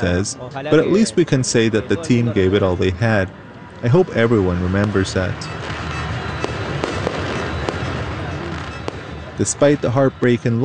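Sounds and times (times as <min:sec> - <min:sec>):
speech: 0:00.0 - 0:05.7, 0:09.4 - 0:10.6
constant noisy crowd roar at a street celebration: 0:00.0 - 0:10.6
fireworks cracking and banging outdoors at a city's main monument: 0:04.7 - 0:10.2.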